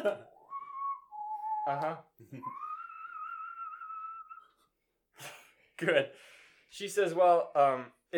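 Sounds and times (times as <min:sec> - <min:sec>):
speech: 0:00.0 - 0:00.3, 0:01.6 - 0:02.7, 0:05.2 - 0:08.1
person whistling birdlike tones imitating bird speech: 0:00.4 - 0:04.7.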